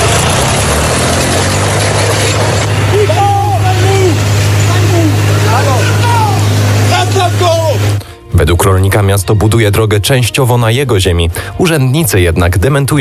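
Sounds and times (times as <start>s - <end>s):
tractor engine droning: 0.0s - 10.0s
raised voices: 2.8s - 8.0s
speech: 9.0s - 12.9s.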